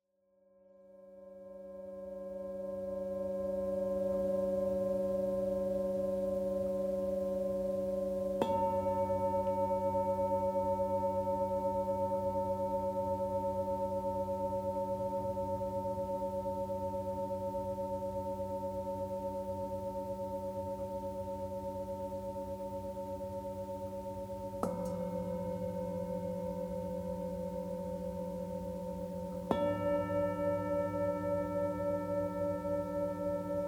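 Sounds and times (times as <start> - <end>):
singing bowls: 0.8 - 33.6.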